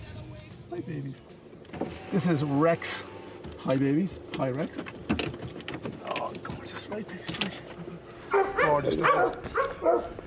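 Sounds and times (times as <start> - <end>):
speech: 0.9 - 1.3, 2.1 - 5.2, 8.8 - 10.1
dogs barking and yipping, including a rescued dog: 8.0 - 10.2.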